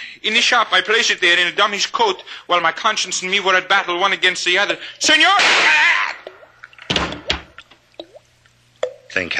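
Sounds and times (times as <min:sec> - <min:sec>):
speech: 0:00.2 - 0:06.2, 0:09.2 - 0:09.3
faucet dripping: 0:06.2 - 0:09.2.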